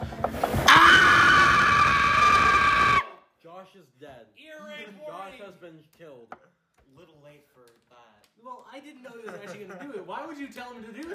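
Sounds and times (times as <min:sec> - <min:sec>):
person screaming: 0:00.7 - 0:03.1
speech: 0:08.8 - 0:11.1
laughter: 0:09.0 - 0:10.2.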